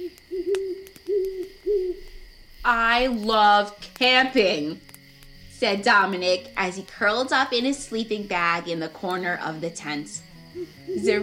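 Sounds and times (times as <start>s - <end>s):
owls hooting at night: 0.0s - 2.2s, 10.1s - 11.2s
speech: 2.7s - 4.9s, 5.6s - 11.2s.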